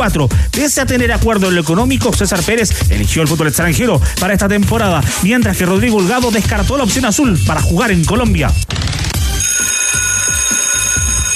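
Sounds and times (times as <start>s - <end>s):
speech: 0.0s - 9.0s
alarm clock bell ringing: 9.4s - 11.3s.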